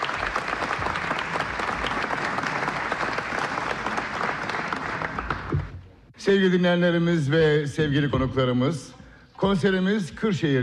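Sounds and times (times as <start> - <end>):
concert audience applauding at a Turkish folk music concert: 0.0 - 5.8
speech: 6.2 - 10.6.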